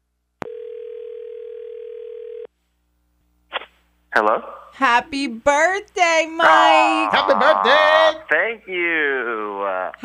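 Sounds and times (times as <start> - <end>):
telephone ringback tone during a call: 0.4 - 2.5
speech: 4.2 - 10.0.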